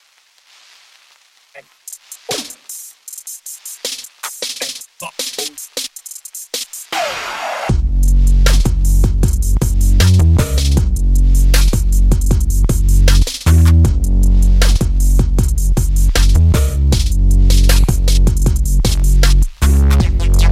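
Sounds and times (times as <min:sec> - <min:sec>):
iK Multimedia Uno Synth synthesizer playing urban sound: 0:07.0 - 0:20.4.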